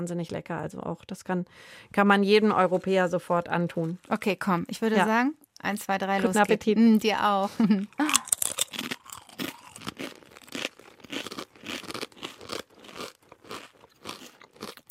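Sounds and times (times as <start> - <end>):
speech: 0.0 - 8.2
laughter: 7.5 - 8.2
crunching bites of homemade fried cassava fries: 8.0 - 14.9.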